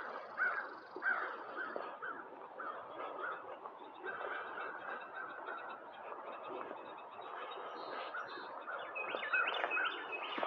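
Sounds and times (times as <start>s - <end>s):
other birds calling faintly: 0.0s - 10.4s
outdoor ambience: 0.0s - 10.4s
crow cawing: 0.4s - 3.4s.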